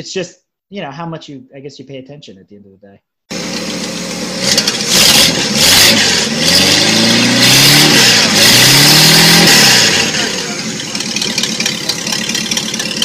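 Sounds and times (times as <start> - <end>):
speech: 0.0 - 3.1
old Mopar Hemi V8 engine revving: 3.3 - 13.0.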